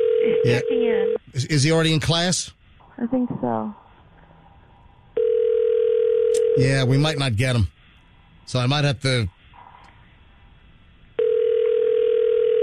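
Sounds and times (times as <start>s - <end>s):
phone call ringback tone while conferencing: 0.0s - 1.2s, 5.2s - 6.8s, 11.2s - 12.6s
speech: 0.4s - 3.8s, 6.6s - 7.8s, 8.5s - 9.4s.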